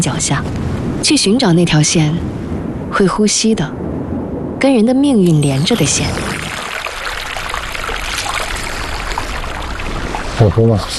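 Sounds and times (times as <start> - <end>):
speech: 0.0 - 3.9, 4.6 - 6.4, 10.4 - 10.9
small mountain stream trickling and babbling: 5.2 - 10.9.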